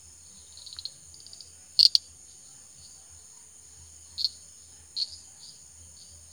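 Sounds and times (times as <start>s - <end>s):
common shrub frog Pseudophilautus popularis clicking calls: 0.0s - 2.1s, 4.0s - 5.5s
continuous shrill insect hum: 0.0s - 6.3s.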